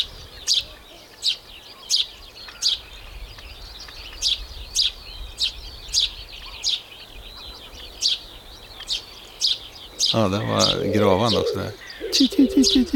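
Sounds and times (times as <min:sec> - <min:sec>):
speech: 0:00.0 - 0:00.6, 0:10.1 - 0:12.9
bird chirping bright and high: 0:00.0 - 0:12.9
low wind-like rumble: 0:01.5 - 0:12.9.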